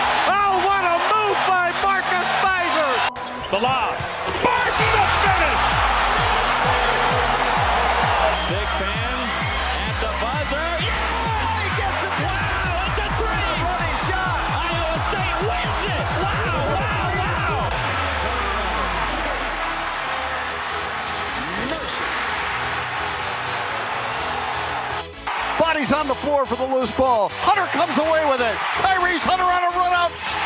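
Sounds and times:
packed basketball arena crowd cheering: 0:00.0 - 0:30.4
speech: 0:03.5 - 0:04.2, 0:26.0 - 0:30.3
rhythmic thumps in a basketball arena: 0:04.2 - 0:24.9.

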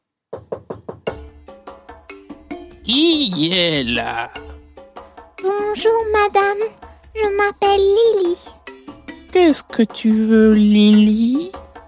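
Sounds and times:
knocking on the wooden door of a small thatched cottage: 0:00.3 - 0:01.2
speech: 0:02.9 - 0:04.5, 0:05.4 - 0:08.6, 0:09.4 - 0:11.6.

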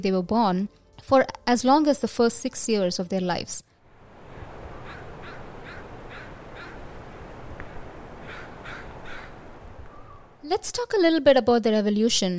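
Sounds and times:
speech: 0:00.0 - 0:03.7, 0:10.5 - 0:12.3
steady broadband outdoor noise: 0:02.5 - 0:12.3
crows cawing: 0:04.4 - 0:10.3.

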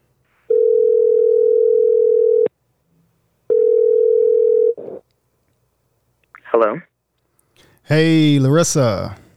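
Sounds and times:
telephone ringing tone on an outgoing call: 0:00.5 - 0:02.5, 0:03.5 - 0:04.8
speech: 0:07.8 - 0:09.2.

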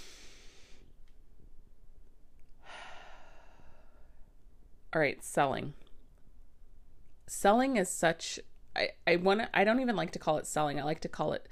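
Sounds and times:
person taking a deep breath: 0:00.0 - 0:01.0, 0:02.6 - 0:04.2
speech: 0:04.9 - 0:05.8, 0:07.3 - 0:11.5.

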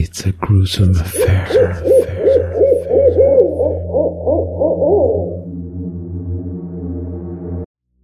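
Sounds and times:
speech: 0:00.0 - 0:04.5
steady low hum: 0:00.7 - 0:07.7
wavering owl hoots: 0:01.0 - 0:06.2.

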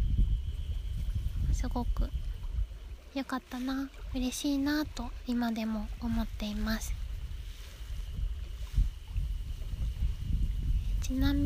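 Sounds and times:
steady soft wash of wind: 0:00.0 - 0:11.4
gentle lake waves lapping at the shore of Lake Shikaribetsu in Japan: 0:00.7 - 0:11.4
speech: 0:01.6 - 0:02.3, 0:03.1 - 0:07.0, 0:11.1 - 0:11.4.

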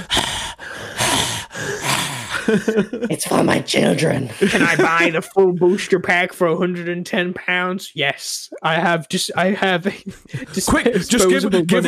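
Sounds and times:
voice imitating heavy breathing: 0:00.0 - 0:03.2, 0:09.9 - 0:11.8
laughter: 0:01.8 - 0:06.0, 0:09.4 - 0:11.8
speech: 0:02.5 - 0:11.8.

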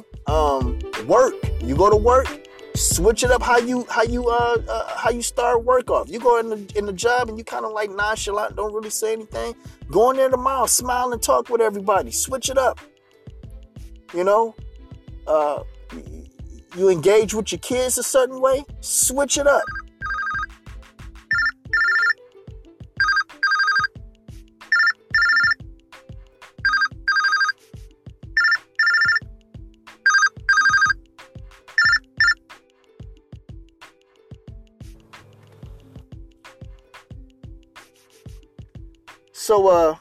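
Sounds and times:
speech: 0:00.3 - 0:12.9, 0:14.1 - 0:14.6, 0:15.3 - 0:19.8, 0:39.5 - 0:39.9
phone ringtone electronic melody over a beat: 0:19.6 - 0:20.5, 0:21.3 - 0:22.2, 0:23.0 - 0:24.0, 0:24.7 - 0:25.7, 0:26.6 - 0:27.6, 0:28.3 - 0:29.3, 0:30.0 - 0:31.0, 0:31.8 - 0:32.5.

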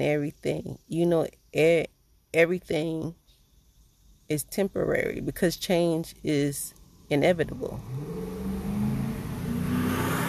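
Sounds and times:
speech: 0:00.0 - 0:03.2, 0:04.3 - 0:08.3
car engine humming while driving past: 0:07.6 - 0:10.2.

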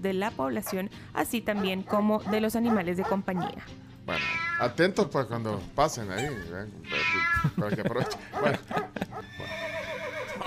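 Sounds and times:
speech: 0:00.0 - 0:09.8
horse neighing with snorts and quavering whinny: 0:04.1 - 0:04.7, 0:06.2 - 0:08.2, 0:09.1 - 0:10.4
laughter: 0:07.0 - 0:09.3, 0:10.2 - 0:10.4.

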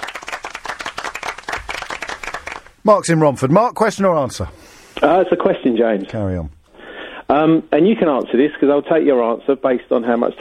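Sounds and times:
round of applause from a small crowd: 0:00.0 - 0:02.8
speech: 0:02.8 - 0:06.6, 0:07.3 - 0:10.3.

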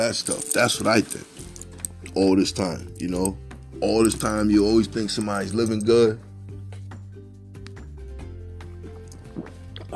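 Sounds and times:
speech: 0:00.0 - 0:01.4, 0:02.2 - 0:06.3
person swigging water: 0:09.1 - 0:09.9.

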